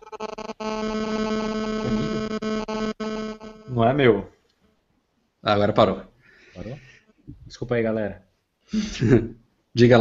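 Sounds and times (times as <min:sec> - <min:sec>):
harsh electronic buzz from mobile phone interference on the line: 0:00.0 - 0:04.0
laughter: 0:01.9 - 0:02.2
speech: 0:03.8 - 0:04.3, 0:05.4 - 0:09.9.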